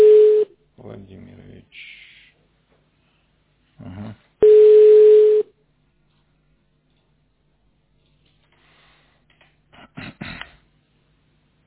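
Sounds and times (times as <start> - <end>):
telephone ringback tone while placing a call: 0.0 - 0.5, 4.4 - 5.5.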